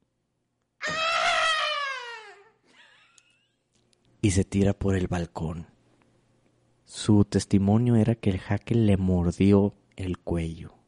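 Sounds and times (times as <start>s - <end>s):
woman screaming late at night: 0.8s - 2.5s
woman crying out: 0.8s - 2.6s
speech: 4.2s - 5.7s, 6.9s - 10.8s.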